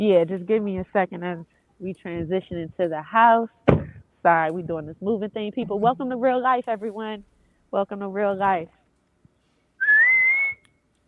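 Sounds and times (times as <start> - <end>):
speech: 0.0 - 8.8
person whistling to call cats: 9.8 - 10.7.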